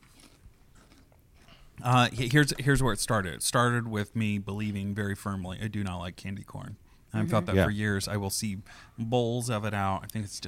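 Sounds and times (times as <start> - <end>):
crunchy chewing: 0.0 - 1.8
speech: 1.8 - 10.4.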